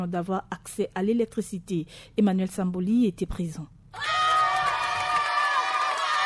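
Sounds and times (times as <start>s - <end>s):
speech: 0.0s - 4.1s
crowd shouting and cheering at arrival of electrical transformer: 4.0s - 6.2s.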